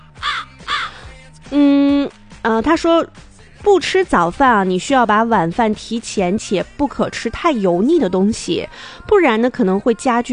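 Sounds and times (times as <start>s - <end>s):
crow cawing: 0.2s - 1.1s
speech: 2.5s - 10.3s.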